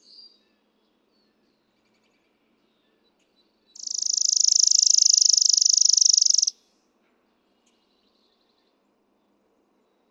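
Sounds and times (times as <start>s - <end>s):
Chipping Sparrow singing a rapid level trill: 3.7s - 6.5s.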